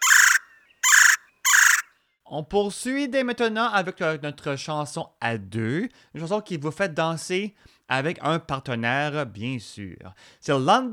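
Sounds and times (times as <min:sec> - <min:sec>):
harsh buzzy bird calls: 0:00.0 - 0:01.9
speech: 0:02.3 - 0:10.9.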